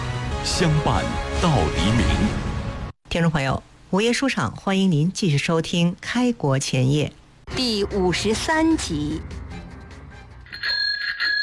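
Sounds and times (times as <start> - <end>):
speech: 0.4 - 2.4, 3.1 - 9.4
doorbell ringing at a residence door: 10.5 - 11.4.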